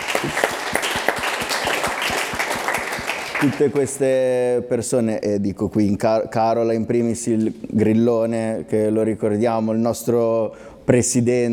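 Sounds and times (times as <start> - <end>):
audience applause: 0.0 - 4.0
speech: 0.2 - 0.5, 3.4 - 11.5.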